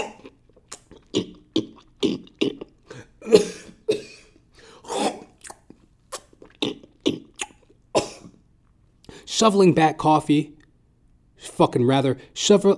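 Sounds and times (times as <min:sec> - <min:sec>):
man's voice imitating coughing while eating popcorn: 0:00.0 - 0:08.4
speech: 0:09.4 - 0:10.6, 0:11.5 - 0:12.7.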